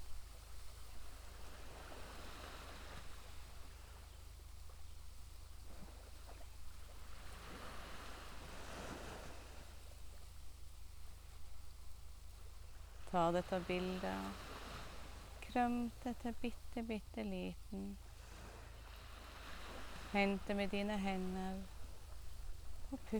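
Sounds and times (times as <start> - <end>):
ocean surf rolling and washing: 0.8 - 4.0, 5.7 - 10.4, 12.5 - 23.1
speech: 13.1 - 14.5, 15.6 - 18.0, 20.1 - 21.7, 22.9 - 23.1.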